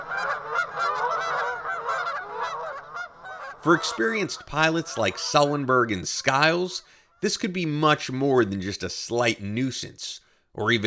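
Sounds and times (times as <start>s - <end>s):
large flock of Canada geese in flight honking: 0.0s - 7.4s
speech: 3.6s - 10.8s.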